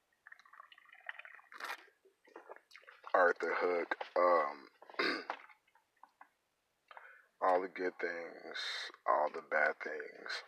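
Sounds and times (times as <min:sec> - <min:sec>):
person sipping a drink: 0:00.4 - 0:03.0
slurp: 0:00.4 - 0:03.8
speech: 0:03.2 - 0:05.1, 0:07.5 - 0:10.4.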